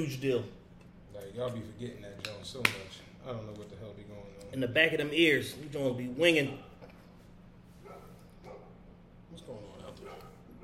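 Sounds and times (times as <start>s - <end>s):
speech: 0.0s - 0.6s, 1.2s - 6.7s
dogs barking and yipping outside: 7.8s - 8.9s, 10.0s - 10.6s.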